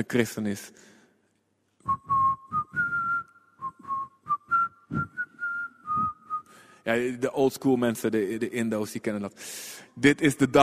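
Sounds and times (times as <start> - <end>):
speech: 0.0 - 0.9, 6.9 - 10.6
person whistling a slow hymn-like melody outdoors by a bus: 1.8 - 6.7.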